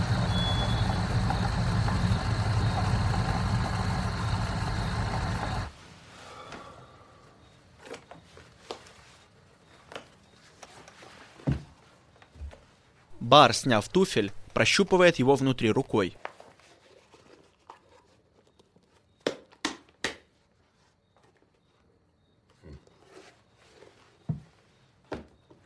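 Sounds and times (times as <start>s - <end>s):
car engine rumbling as the vehicle pulls up near a house and stops: 0.0s - 5.7s
speech: 13.3s - 16.3s.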